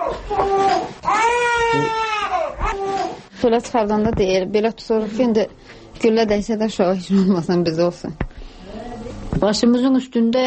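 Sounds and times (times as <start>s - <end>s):
two-month-old infant crying: 0.0s - 3.3s
speech: 3.4s - 8.3s, 9.4s - 10.4s.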